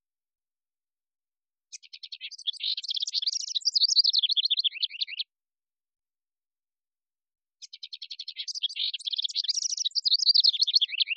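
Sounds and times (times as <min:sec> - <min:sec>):
house wren singing: 0:01.7 - 0:05.3, 0:07.6 - 0:11.1.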